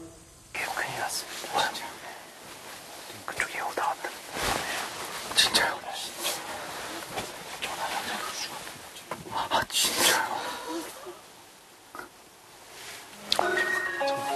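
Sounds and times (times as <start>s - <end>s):
soft rustling: 0.6s - 11.5s, 12.5s - 13.3s
fox whimpering with short sharp yelps and thin whines: 13.4s - 14.2s.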